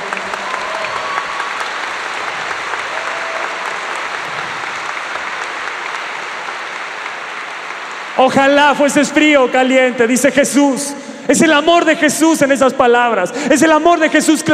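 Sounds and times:
large crowd applauding loudly: 0:00.0 - 0:10.3
speech: 0:08.2 - 0:14.5.

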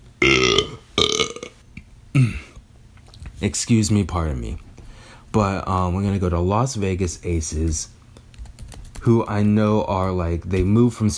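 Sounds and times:
loud burps: 0:00.2 - 0:02.6
speech: 0:02.2 - 0:02.4, 0:03.4 - 0:04.6, 0:05.3 - 0:08.0, 0:09.0 - 0:11.1.

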